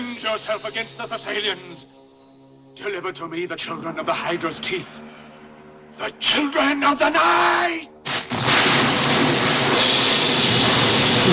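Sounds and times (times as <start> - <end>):
speech: 0.2 - 2.0, 2.8 - 5.2, 6.0 - 7.9
fireballs exploding: 8.0 - 11.3
thunder rumbling: 8.1 - 11.3.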